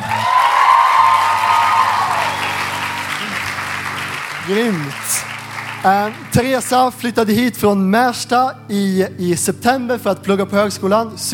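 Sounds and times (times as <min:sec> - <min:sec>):
audience applause: 0:00.0 - 0:07.1
people cheering: 0:00.0 - 0:07.1
speech: 0:04.5 - 0:11.3.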